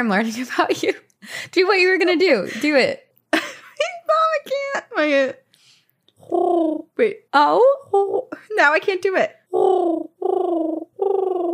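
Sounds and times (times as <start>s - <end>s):
speech: 0.0s - 3.0s, 4.4s - 5.4s, 6.3s - 11.5s
person imitating a dove cooing by vibrating saliva in the throat: 6.2s - 7.1s, 7.8s - 8.5s, 9.5s - 11.5s.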